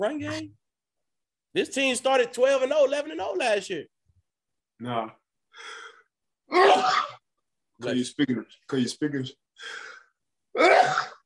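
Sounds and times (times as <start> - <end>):
speech: 0.0 - 0.6, 1.5 - 4.0, 4.8 - 5.8, 6.5 - 7.1, 7.8 - 9.9, 10.6 - 11.2
breathy intake before a sneeze: 5.5 - 6.1, 9.6 - 10.2
loud sneeze: 6.5 - 7.2, 10.6 - 11.2.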